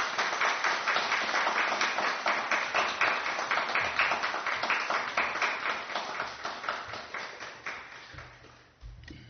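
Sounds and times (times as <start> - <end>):
audience applauding to welcome speaker: 0.0 - 8.7.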